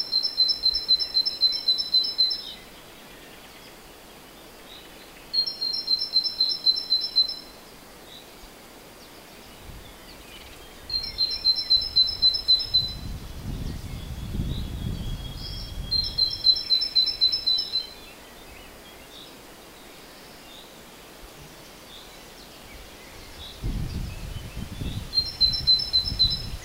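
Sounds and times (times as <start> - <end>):
great tit Parus major singing: 0.0 - 3.8, 4.7 - 8.3, 9.0 - 19.4, 21.8 - 26.6.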